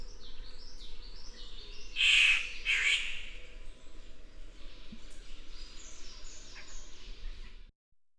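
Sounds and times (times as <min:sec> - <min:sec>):
Victoria's riflebird Ptiloris victoriae giving harsh rasping calls: 0:02.0 - 0:03.3.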